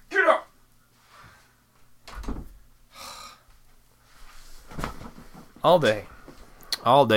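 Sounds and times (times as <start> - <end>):
door creaking: 2.0 - 2.6
speech: 5.6 - 6.1, 6.8 - 7.1.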